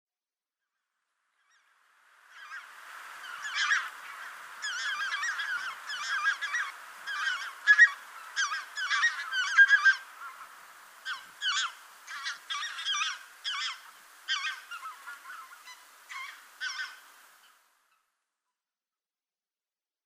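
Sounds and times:
Lesser White-fronted Goose calling: 2.4s - 17.1s.

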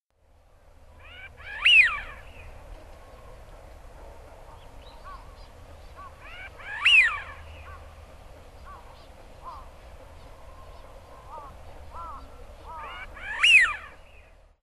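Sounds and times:
Eurasian wigeon in Hyogo: 1.0s - 2.6s, 4.4s - 7.9s, 8.6s - 14.2s.

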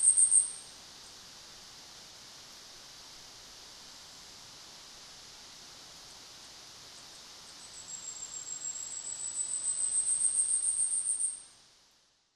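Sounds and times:
Asian stubtail hissing cricket-like high pulses at Tanzawa, Japan: 0.0s - 0.8s, 7.4s - 11.6s
soft background hiss: 0.0s - 12.3s.

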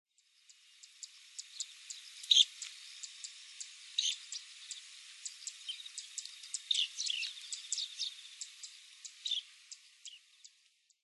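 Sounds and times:
dunlin calling in Hyogo: 4.0s - 10.2s.

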